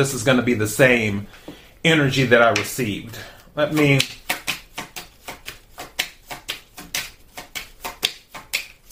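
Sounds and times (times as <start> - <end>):
speech: 0.0 - 4.2
tarot cards being shuffled by hand: 3.7 - 8.8.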